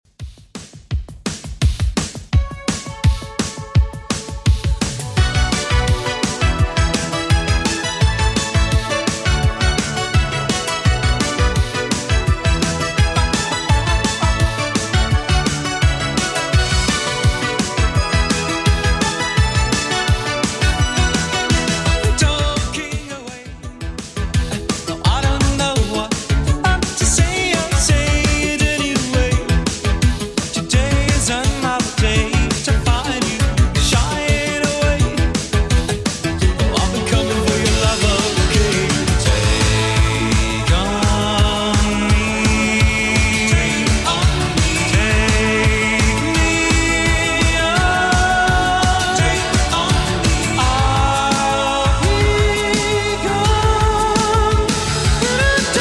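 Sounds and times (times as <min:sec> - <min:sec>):
80s drum beat: 0:00.0 - 0:55.7.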